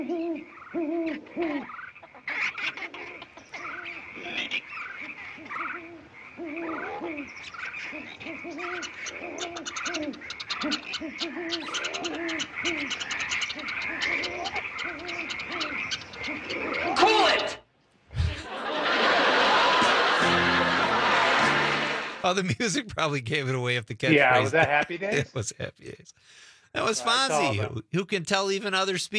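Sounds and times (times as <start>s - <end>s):
speech: 0.0s - 1.8s, 22.3s - 26.2s, 26.8s - 29.1s
owl-like hoots: 0.0s - 17.6s
frogs croaking: 0.0s - 17.7s
laughter: 18.2s - 22.9s, 24.0s - 25.8s, 26.8s - 27.8s.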